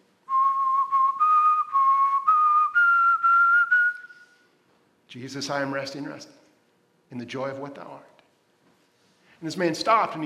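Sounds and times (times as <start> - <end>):
person whistling a slow hymn melody: 0.3 - 4.4
speech: 5.1 - 6.4, 7.1 - 8.1, 9.4 - 10.2.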